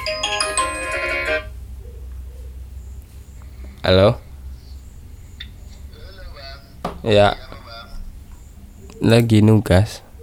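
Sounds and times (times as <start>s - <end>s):
phone electronic ringtone of an incoming call: 0.0s - 1.6s
faint room noise: 0.0s - 10.2s
speech: 3.9s - 4.2s, 7.0s - 7.5s, 9.0s - 10.0s.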